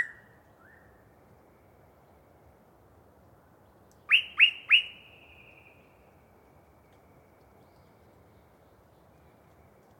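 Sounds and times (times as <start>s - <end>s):
yellow-breasted chat song in deciduous cover: 0.0s - 0.9s, 4.0s - 5.9s.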